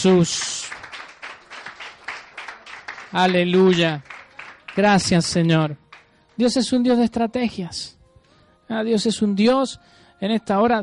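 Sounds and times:
speech: 0.0 - 0.7, 3.1 - 4.1, 4.8 - 5.8, 6.4 - 8.0, 8.7 - 10.8
church audience applauding during a sermon: 0.0 - 6.1.

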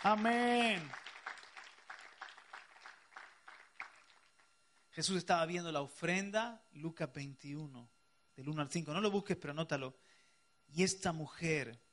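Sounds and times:
speech: 0.0 - 1.0, 5.0 - 10.1, 10.7 - 11.8
audience applauding: 0.0 - 4.5.

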